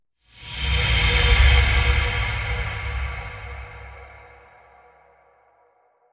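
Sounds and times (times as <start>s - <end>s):
magical sounding short transition effect for video editing: 0.3s - 5.0s.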